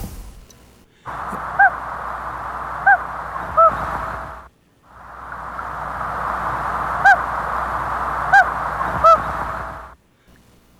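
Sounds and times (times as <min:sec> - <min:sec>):
hissing outdoor background: 0:00.0 - 0:10.7
honking bird calls at lakes: 0:01.1 - 0:10.0.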